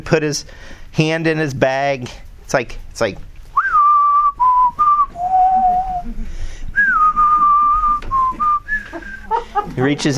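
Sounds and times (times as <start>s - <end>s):
speech: 0.0s - 3.3s, 9.7s - 10.1s
person whistling a tune: 3.6s - 6.1s, 6.8s - 9.3s
laughter: 5.1s - 10.1s.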